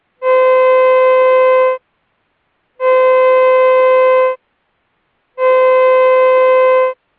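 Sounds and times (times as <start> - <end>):
pre-announcement horn blasts: 0.2 - 1.8, 2.8 - 4.4, 5.4 - 7.0.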